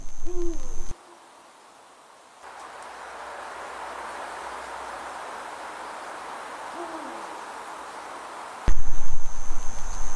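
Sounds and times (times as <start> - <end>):
owl hooting at night: 0.0 - 1.2, 6.7 - 7.3
steady hiss of nocturnal ambience: 0.0 - 10.1.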